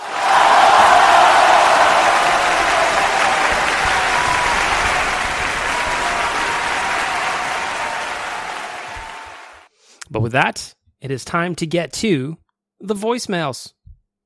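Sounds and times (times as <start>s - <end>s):
sizable crowd applauding: 0.0s - 9.7s
speech: 10.2s - 13.8s.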